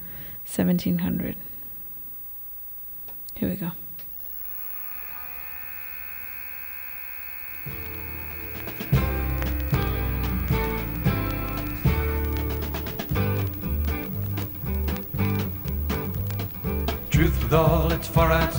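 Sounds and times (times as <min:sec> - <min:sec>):
speech: 0:00.5 - 0:01.5, 0:03.4 - 0:03.8, 0:17.5 - 0:18.5
folk song recording with rhythmic chords and bouncing beat: 0:07.7 - 0:18.5.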